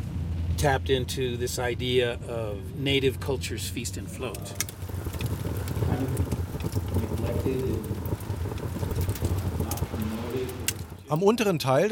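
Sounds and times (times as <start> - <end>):
low rumbling background: 0.0 - 11.2
speech: 0.6 - 4.8, 7.5 - 7.9, 11.1 - 11.9
steady rain falling in the lower part of a national park: 4.5 - 11.2.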